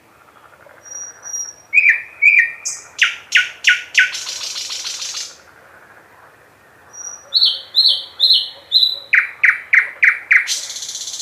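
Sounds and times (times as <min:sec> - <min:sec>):
thrush nightingale singing: 0:00.3 - 0:05.4, 0:06.9 - 0:11.1.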